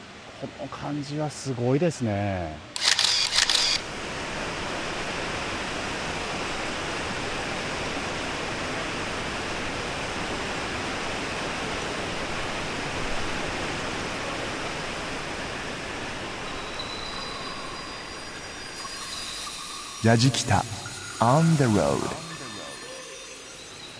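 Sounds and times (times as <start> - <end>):
speech: 0.4 - 2.7, 20.0 - 22.2
big waterfall roaring onto rocks: 3.8 - 23.9
sharp noise burst: 16.4 - 23.9.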